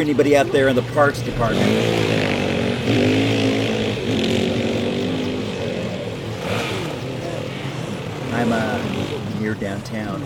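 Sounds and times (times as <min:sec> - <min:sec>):
speech: 0:00.0 - 0:04.4, 0:08.4 - 0:10.2
dirt bike engine revving in a video game: 0:00.0 - 0:10.2.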